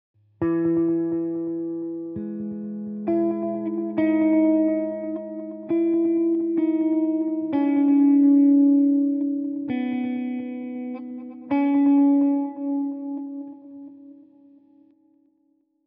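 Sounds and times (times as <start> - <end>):
guitar intro: 0.4 - 15.2.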